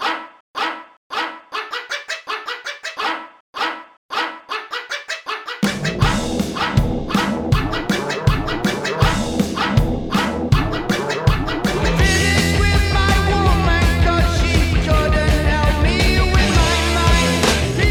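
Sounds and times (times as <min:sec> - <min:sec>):
dog barking: 0:00.0 - 0:11.8
full band playing with guitars: 0:05.7 - 0:17.8.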